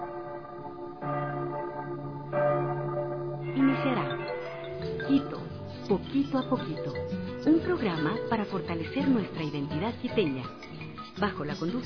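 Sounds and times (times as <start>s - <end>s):
church bells ringing in the city of Quito: 0.0s - 7.0s
speech: 5.1s - 11.8s.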